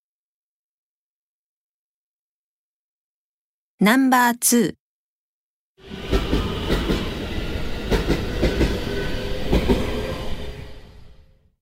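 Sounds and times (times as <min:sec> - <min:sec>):
speech: 0:03.8 - 0:04.8
train rolling along rails: 0:05.8 - 0:11.6.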